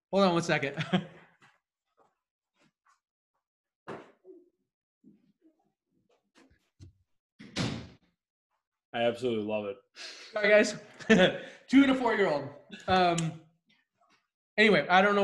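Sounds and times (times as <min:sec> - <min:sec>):
speech: 0:00.1 - 0:01.2, 0:09.0 - 0:13.4, 0:14.6 - 0:15.2
office door closing with a thud: 0:07.4 - 0:08.0.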